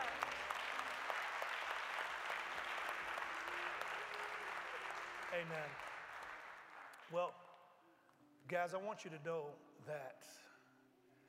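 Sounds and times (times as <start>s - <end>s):
audience applauding: 0.0s - 7.2s
speech: 5.3s - 5.9s, 7.1s - 7.4s, 8.4s - 10.5s.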